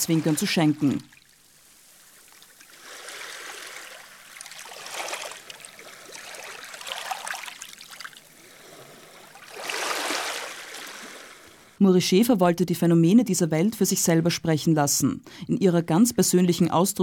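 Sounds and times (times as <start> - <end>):
speech: 0.0 - 1.2, 11.9 - 17.0
rushing water: 0.0 - 11.8.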